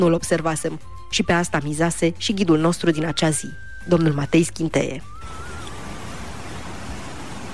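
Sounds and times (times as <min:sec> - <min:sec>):
speech: 0:00.0 - 0:05.1
small waterfall rushing: 0:05.2 - 0:07.5.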